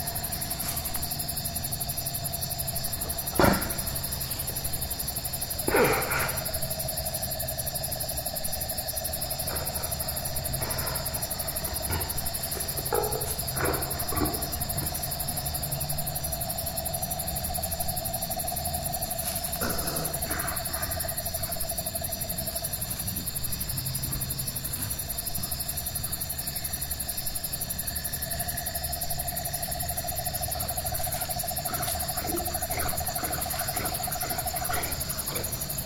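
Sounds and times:
chorus of shrill insect trills at night: 0.0s - 35.8s.

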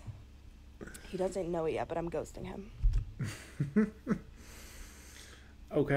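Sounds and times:
speech: 1.1s - 4.3s, 5.7s - 5.9s
heavy breathing with short voiced huffs: 4.3s - 5.6s.

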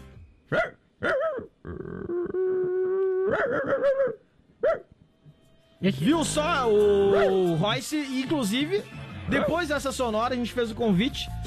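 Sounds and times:
speech: 0.5s - 1.2s, 3.3s - 4.2s, 5.8s - 11.4s
military police dog barking: 0.5s - 1.5s, 3.3s - 4.9s, 7.1s - 7.4s
military police dog whining: 0.5s - 4.8s.

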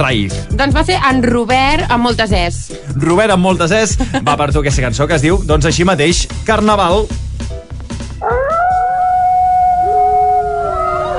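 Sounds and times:
speech: 0.0s - 7.3s
wolves howling: 8.2s - 11.1s.

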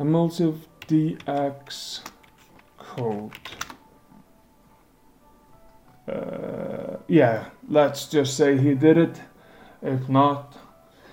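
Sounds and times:
speech: 0.0s - 2.1s, 2.8s - 3.6s, 6.1s - 10.6s
typing on a computer keyboard: 0.8s - 3.8s.

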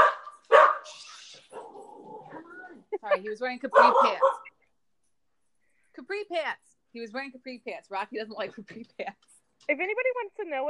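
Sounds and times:
small dog barking: 0.0s - 0.9s, 3.7s - 4.5s
small dog yipping or whining: 0.0s - 1.8s, 3.7s - 4.5s
speech: 3.0s - 4.5s, 6.1s - 10.6s.

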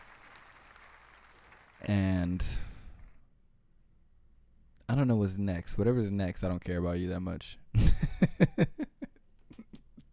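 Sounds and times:
crowd applause: 0.0s - 2.0s
speech: 1.9s - 2.6s, 5.0s - 8.8s.

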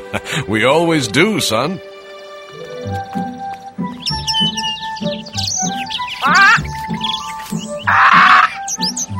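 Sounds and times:
speech: 0.1s - 1.9s
birds chirping and tweeting: 0.7s - 9.1s
steady rhythmic low thumping: 1.9s - 9.1s
dense buzzy bird twittering: 3.8s - 9.1s.

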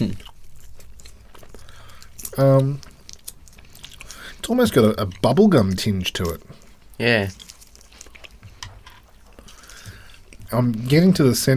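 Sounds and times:
chewing hard sugary Mentos mint candy: 0.0s - 11.3s
speech: 2.4s - 2.9s, 4.5s - 7.4s, 10.5s - 11.5s.

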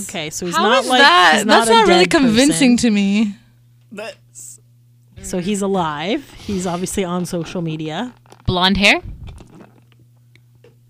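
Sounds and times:
speech: 0.0s - 4.5s, 5.2s - 9.1s
low steady electrical hum: 0.0s - 10.8s
person sipping coffee: 9.3s - 10.0s.

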